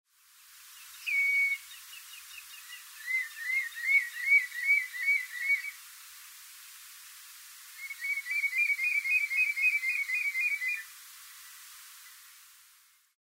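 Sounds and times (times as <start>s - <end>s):
redshank calling at night: 0.7s - 6.0s, 7.7s - 12.4s.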